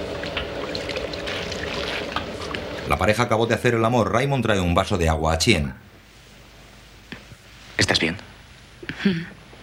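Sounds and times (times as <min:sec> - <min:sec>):
broth poured over a whole inflated duck: 0:00.2 - 0:02.9
speech: 0:02.9 - 0:05.9, 0:09.1 - 0:09.3.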